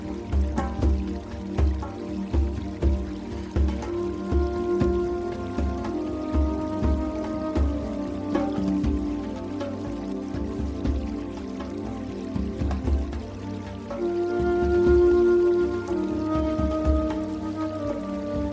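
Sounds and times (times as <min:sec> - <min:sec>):
low regular pulsing drone: 0:00.0 - 0:18.5
stream-like trickling water: 0:00.0 - 0:18.5
breathy flute holding long slow notes in new age music: 0:03.4 - 0:10.4, 0:13.8 - 0:18.5.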